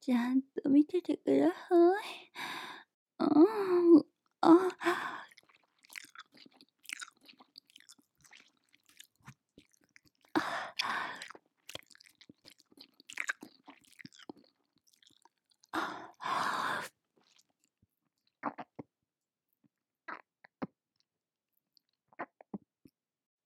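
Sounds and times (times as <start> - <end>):
speech: 0.0 - 2.5, 3.2 - 5.1
wet squelching mouth sounds of slow chewing: 4.7 - 18.8.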